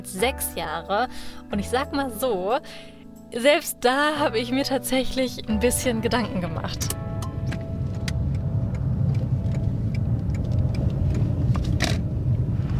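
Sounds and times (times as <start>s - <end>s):
speech: 0.0s - 7.0s
car engine and road rumble from inside a moving car: 5.6s - 12.7s.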